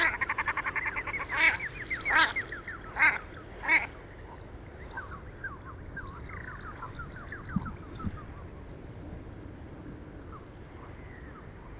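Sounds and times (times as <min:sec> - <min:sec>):
common shelduck Tadorna tadorna cackling and barking: 0:00.0 - 0:03.9.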